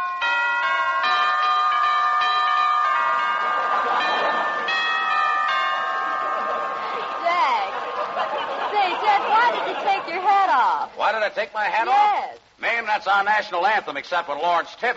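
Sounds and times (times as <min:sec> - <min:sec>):
doorbell chiming a short melodic tune: 0:00.0 - 0:07.2
laughter: 0:03.0 - 0:10.9
speech: 0:11.2 - 0:14.9.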